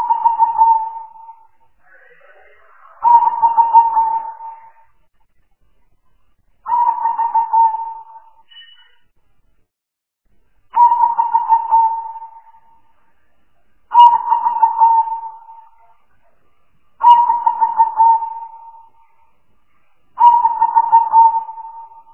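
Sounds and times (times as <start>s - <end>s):
Spotted dove giving a burry pulsed coo: 0.0s - 1.5s, 3.0s - 4.8s, 6.7s - 8.4s, 10.8s - 12.6s, 13.9s - 15.9s, 17.0s - 18.9s, 20.2s - 22.1s.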